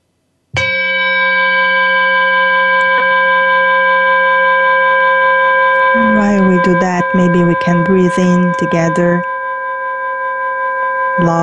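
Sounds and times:
meditation bell struck with shimmering tone: 0:00.6 - 0:06.6, 0:09.3 - 0:11.2
speech: 0:06.7 - 0:09.3, 0:11.2 - 0:11.4.

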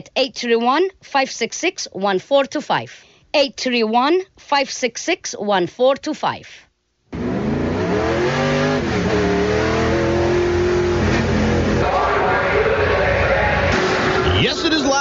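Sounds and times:
speech: 0:00.1 - 0:06.6
race car engines revving at a speedway: 0:07.1 - 0:14.6.

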